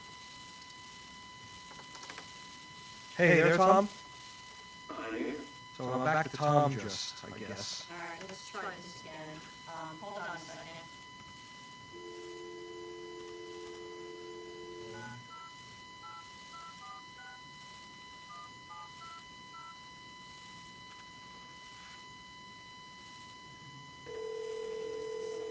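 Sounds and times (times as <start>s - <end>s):
speech: 3.2s - 4.0s, 5.8s - 11.0s
phone dial tone: 11.9s - 19.8s, 24.1s - 25.5s.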